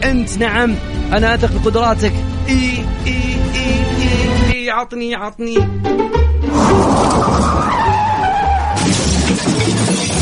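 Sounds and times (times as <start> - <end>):
speech: 0.0 - 7.8
car headlight glass shattering from a kicked ball: 6.6 - 10.2.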